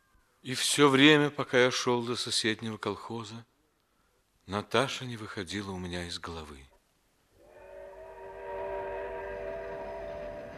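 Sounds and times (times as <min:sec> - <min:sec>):
speech: 0:00.4 - 0:03.5, 0:04.5 - 0:06.7
train horn sounding a long steady chord: 0:07.5 - 0:10.5
train rumbling on rails: 0:08.4 - 0:10.5.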